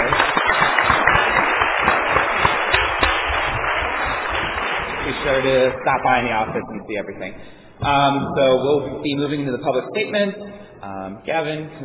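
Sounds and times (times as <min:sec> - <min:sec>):
room full of people clapping in a round of applause: 0:00.0 - 0:06.8
speech: 0:05.4 - 0:11.8.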